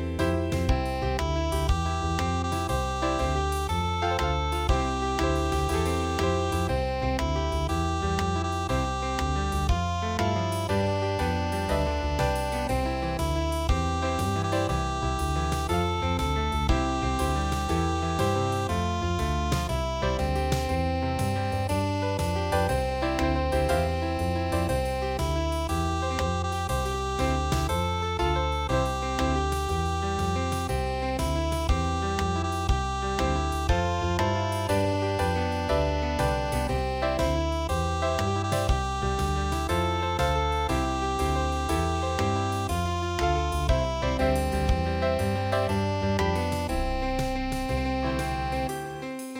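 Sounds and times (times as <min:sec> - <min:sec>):
MIDI blues harmonica: 0:00.2 - 0:49.3.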